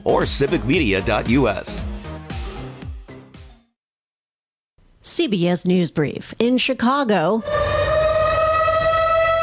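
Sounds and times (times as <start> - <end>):
speech: 0.0 - 1.8, 5.0 - 7.8
tornado warning siren wailing: 7.4 - 9.4.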